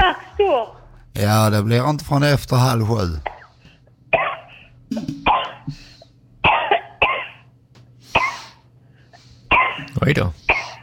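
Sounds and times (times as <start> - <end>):
speech: 0.5 - 3.3, 10.0 - 10.4
person having a harsh coughing fit: 3.2 - 7.6, 8.2 - 8.6, 9.5 - 10.8.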